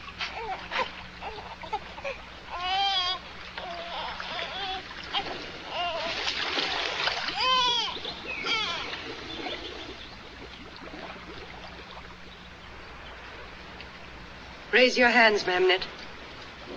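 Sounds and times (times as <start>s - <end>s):
wavering vocal cries: 0.0s - 9.0s
water splashing and churning as an ark is filled and sunk in the Nile: 0.0s - 15.1s, 15.9s - 16.7s
speech: 14.8s - 16.0s.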